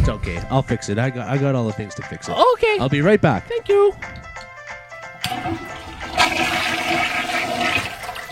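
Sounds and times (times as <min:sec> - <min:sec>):
speech: 0:00.1 - 0:04.3, 0:05.4 - 0:05.7
toilet flush click: 0:05.2 - 0:08.3.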